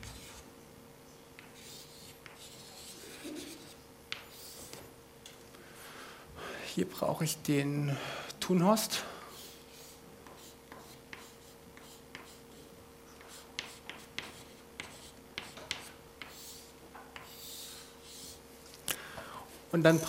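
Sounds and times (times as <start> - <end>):
steady low electrical hum: 0.0 - 20.0
pen scratching while handwriting: 1.4 - 4.7, 9.4 - 12.6, 13.2 - 18.4
speech: 6.8 - 9.1, 19.8 - 20.0.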